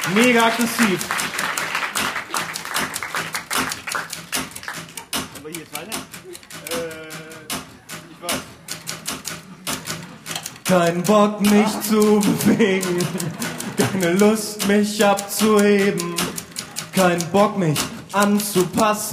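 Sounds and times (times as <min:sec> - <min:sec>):
speech: 0:00.0 - 0:01.4, 0:10.7 - 0:16.3, 0:17.0 - 0:19.1
typewriter hammered rhythmically like a percussion instrument: 0:00.0 - 0:19.1
laughter: 0:11.3 - 0:15.0.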